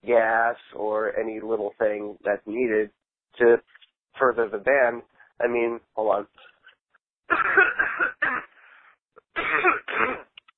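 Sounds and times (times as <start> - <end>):
speech: 0.1 - 6.5, 7.3 - 8.1
person coughing harshly: 7.3 - 8.6, 9.3 - 10.4.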